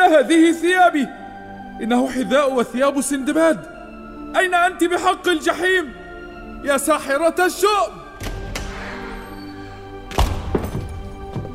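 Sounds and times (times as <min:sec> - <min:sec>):
speech: 0:00.1 - 0:01.2, 0:01.8 - 0:03.7, 0:04.3 - 0:06.0, 0:06.6 - 0:08.0
heavy wooden door of a room flung open: 0:08.2 - 0:11.5.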